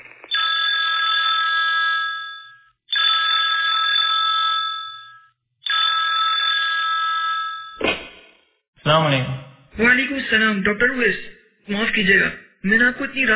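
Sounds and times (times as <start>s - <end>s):
telephone ringing with electronic trill: 0.0s - 7.8s
speech: 8.9s - 13.3s.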